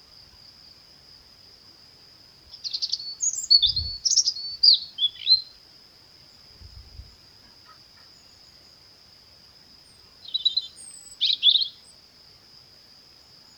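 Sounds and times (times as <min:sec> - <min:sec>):
European robin Erithacus rubecula singing tinkling warbled phrases: 0:02.6 - 0:05.5, 0:10.2 - 0:11.9.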